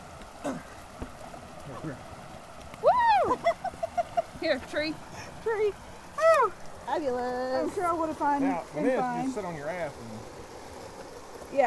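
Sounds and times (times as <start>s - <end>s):
rushing splashing water: 0.0s - 11.6s
speech: 1.8s - 2.1s, 4.4s - 10.4s
people exclaiming: 2.8s - 3.9s.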